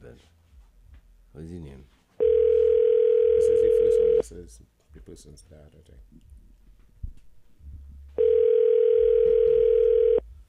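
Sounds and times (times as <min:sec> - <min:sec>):
speech: 0:01.4 - 0:02.0, 0:04.3 - 0:06.4
phone line ringback tone, unanswered: 0:02.2 - 0:04.2, 0:08.2 - 0:10.2.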